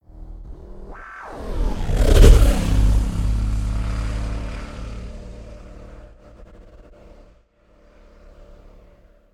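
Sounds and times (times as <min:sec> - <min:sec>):
frequency-shifted designed pass-by whooshes: 0:00.0 - 0:07.4.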